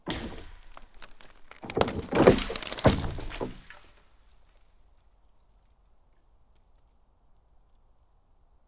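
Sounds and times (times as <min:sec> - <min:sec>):
pine tree falling: 0:00.0 - 0:04.8.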